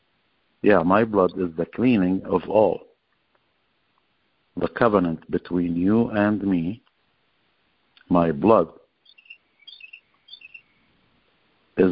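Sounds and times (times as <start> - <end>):
speech: 0.6 - 2.9, 4.6 - 6.9, 8.1 - 8.8
birds chirping through an open house door: 0.7 - 2.9, 8.5 - 11.1.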